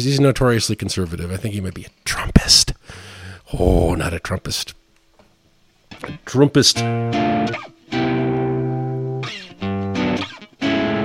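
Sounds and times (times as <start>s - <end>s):
speech: 0.0s - 4.8s, 6.0s - 8.2s
electric guitar played through distortion: 6.8s - 11.0s.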